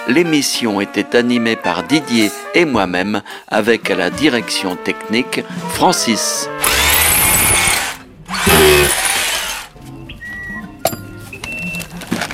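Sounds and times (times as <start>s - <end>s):
speech: 0.1s - 6.8s
screwdriver turning a screw, harsh whirring: 6.6s - 9.7s.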